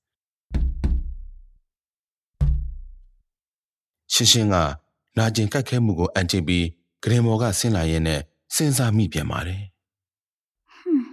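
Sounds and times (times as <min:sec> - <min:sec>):
knocking on a door from outside a room: 0:00.5 - 0:01.4, 0:02.4 - 0:03.0
speech: 0:04.1 - 0:09.7.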